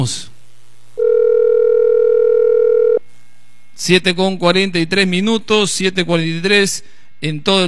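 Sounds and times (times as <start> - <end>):
speech: 0.0 - 0.3, 3.8 - 7.6
telephone line tone on a call: 1.0 - 3.0.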